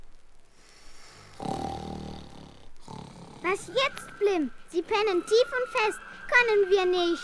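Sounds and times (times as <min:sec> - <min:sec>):
two people snoring while sleeping beside a treasure chest: 0:00.6 - 0:04.6
speech: 0:03.4 - 0:07.2.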